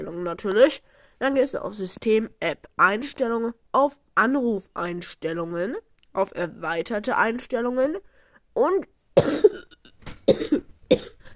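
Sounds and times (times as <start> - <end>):
speech: 0.2 - 9.5, 10.3 - 11.1
person coughing: 9.2 - 9.7, 10.3 - 11.3.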